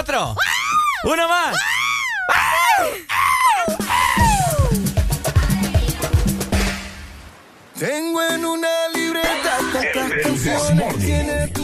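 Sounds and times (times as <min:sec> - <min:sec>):
speech: 0:00.1 - 0:03.8, 0:07.8 - 0:11.5
loud high-pitched joyful shouts: 0:00.4 - 0:04.8
rhythmic music with a steady beat: 0:03.6 - 0:07.2, 0:07.9 - 0:11.6.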